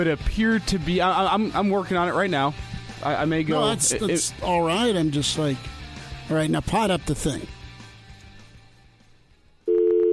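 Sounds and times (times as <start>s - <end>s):
speech: 0.0s - 7.6s
telephone line tone on a dead analog phone line: 9.7s - 10.1s.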